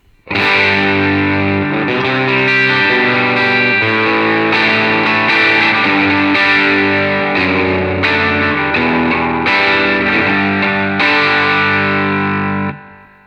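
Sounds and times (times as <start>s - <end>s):
overdriven electric guitar through preamp with high gain playing distorted chords: 0.0s - 13.2s.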